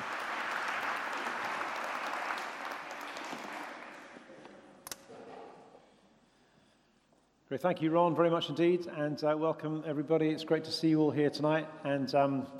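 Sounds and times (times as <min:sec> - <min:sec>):
crowd applause: 0:00.0 - 0:04.3
speech: 0:07.5 - 0:12.5.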